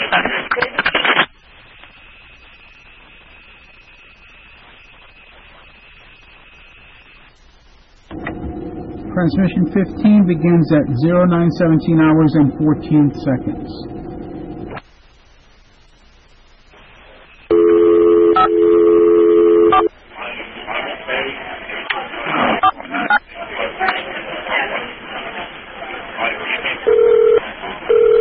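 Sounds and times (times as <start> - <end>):
voices over a telephone line: 0.0 - 1.3, 8.1 - 14.9, 19.9 - 28.0
speech: 9.2 - 13.9
loud electronic telephone ring: 17.5 - 19.9, 26.9 - 28.1.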